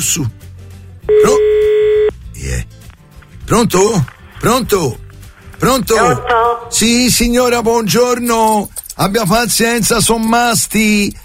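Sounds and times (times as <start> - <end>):
speech: 0.0 - 0.4, 3.5 - 5.0, 5.6 - 11.2
telephone dial tone of an outgoing call: 1.1 - 2.1.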